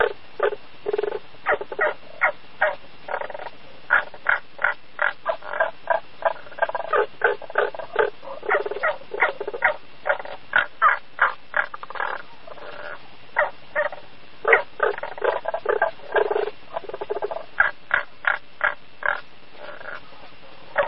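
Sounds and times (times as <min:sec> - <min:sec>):
frog croaking: 0:00.0 - 0:20.8.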